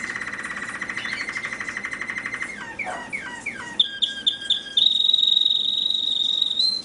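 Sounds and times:
American singer canary song: 0.0s - 6.8s.

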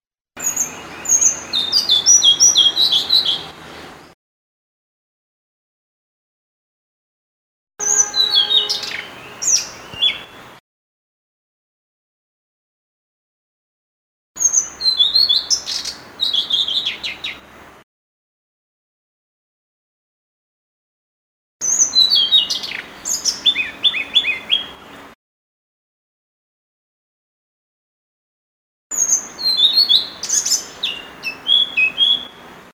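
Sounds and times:
blue-throated flycatcher chirping: 0.4s - 4.0s, 7.8s - 10.6s, 14.4s - 17.4s, 21.6s - 24.8s, 29.0s - 32.5s.

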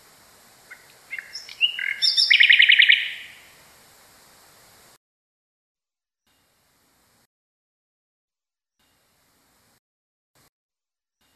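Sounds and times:
common nightingale song with fast rich rattling trill: 0.1s - 3.6s.

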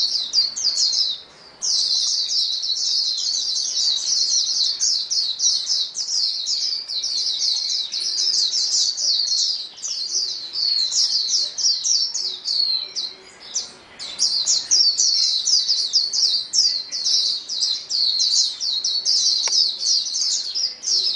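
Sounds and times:
White-eye chorus of rapid high chirps and trills: 0.0s - 21.1s.

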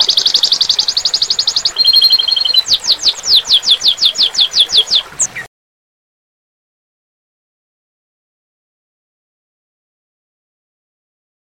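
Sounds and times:
domestic canary singing high trills and two-tone rattle: 0.0s - 5.5s.

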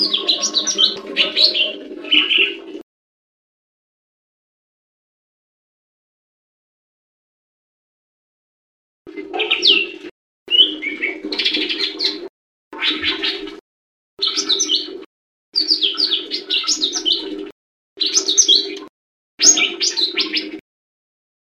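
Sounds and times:
leafbird song of chirps, trills and slurred whistles: 0.0s - 2.8s, 9.3s - 13.6s, 14.2s - 15.0s, 15.6s - 20.6s.

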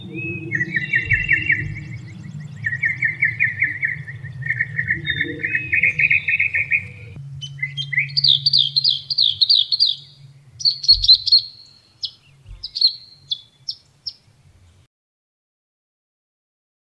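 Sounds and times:
low rumbling: 0.0s - 14.8s
Northern mockingbird song: 0.0s - 14.9s.

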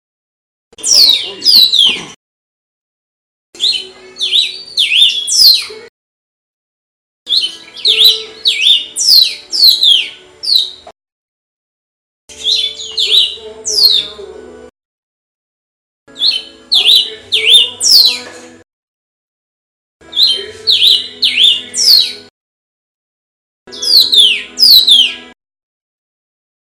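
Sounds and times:
cardinal bird singing: 0.8s - 2.2s, 3.6s - 5.9s, 7.3s - 10.9s, 12.3s - 14.3s, 16.1s - 18.4s, 20.0s - 22.3s, 23.7s - 25.4s.

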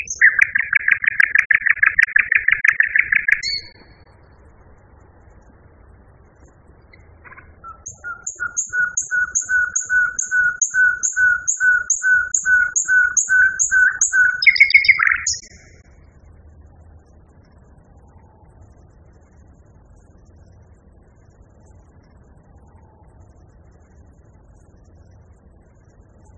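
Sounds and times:
common nightingale singing: 0.0s - 4.2s, 6.8s - 15.8s.

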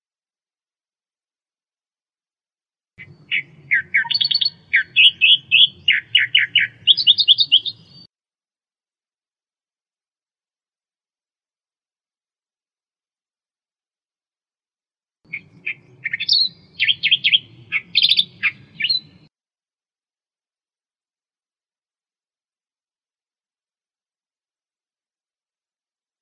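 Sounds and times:
Australian reed warbler song: 3.0s - 8.1s, 15.3s - 19.3s.

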